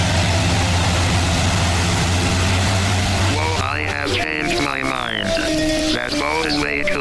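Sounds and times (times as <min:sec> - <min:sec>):
hovercraft engine droning: 0:00.0 - 0:06.9.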